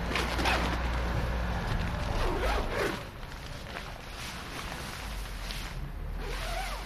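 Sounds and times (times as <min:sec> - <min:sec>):
rustling: 0:00.0 - 0:06.8
tent entrance zipper being pulled open: 0:00.1 - 0:00.9, 0:02.0 - 0:03.2, 0:05.7 - 0:06.8.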